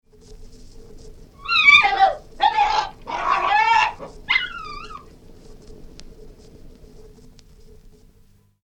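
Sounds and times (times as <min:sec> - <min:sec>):
Cairn Terrier yelping and howling: 0:01.4 - 0:05.1.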